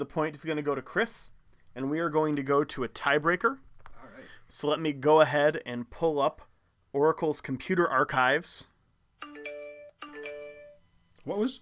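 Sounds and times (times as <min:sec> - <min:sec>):
speech: 0:00.0 - 0:03.7, 0:04.5 - 0:09.5, 0:11.2 - 0:11.6
phone message notification chime: 0:09.2 - 0:10.8.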